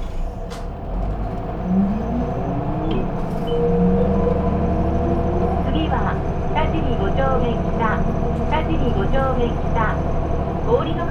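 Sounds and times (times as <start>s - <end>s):
city bus engine rumble pulling away: 0.0s - 11.1s.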